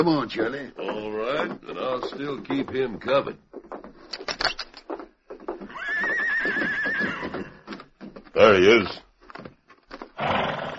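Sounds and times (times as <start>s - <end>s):
speech: 0.0s - 3.5s, 8.4s - 9.0s
stallion hooves clopping: 0.0s - 10.7s
stallion wearing riding gear neighing: 5.6s - 7.7s, 10.2s - 10.7s.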